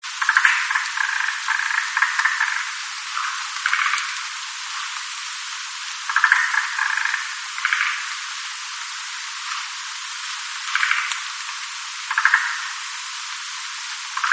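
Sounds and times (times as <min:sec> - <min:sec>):
frog croaking: 0:00.2 - 0:04.4, 0:06.1 - 0:08.3, 0:10.7 - 0:11.3, 0:12.0 - 0:12.9, 0:14.2 - 0:14.3.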